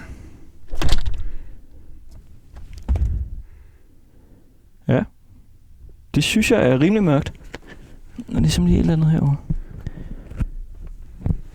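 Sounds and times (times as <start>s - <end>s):
low rumbling background: 0.0s - 11.5s
heavier thud of door closing: 0.7s - 1.5s, 2.7s - 3.5s
speech: 4.9s - 5.1s, 6.2s - 7.5s, 8.3s - 9.6s.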